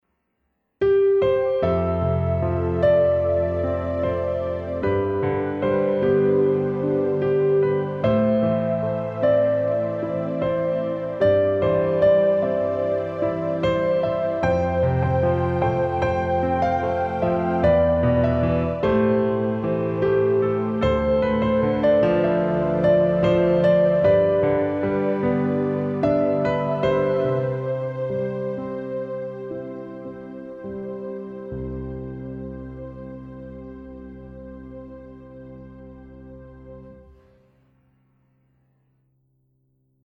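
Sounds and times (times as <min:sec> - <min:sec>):
synth: 0:01.4 - 0:37.4.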